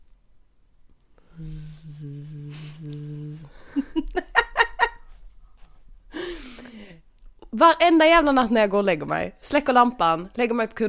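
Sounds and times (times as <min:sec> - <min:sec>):
short breathy bursts: 0:01.2 - 0:03.8
person imitating a mosquito with a nasal droning buzz: 0:01.3 - 0:03.6
laughter: 0:03.6 - 0:05.0
speech: 0:07.6 - 0:10.8.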